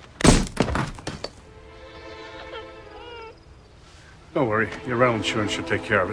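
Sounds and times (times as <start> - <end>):
brick thudding: 0.2 - 1.4
speech: 4.4 - 6.1.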